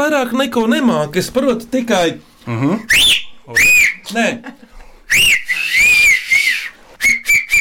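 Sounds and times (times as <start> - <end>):
speech: 0.2 - 5.4
loud piercing finger whistle: 2.9 - 4.0, 5.1 - 7.5.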